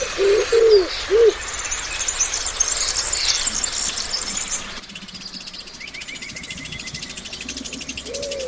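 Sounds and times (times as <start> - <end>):
dove cooing in woodland: 0.0 - 1.5, 6.6 - 8.4
dense chirping birdsong in woodland: 0.0 - 8.4
scattered calls: 0.0 - 8.4
steady insect-like trill: 1.5 - 8.4.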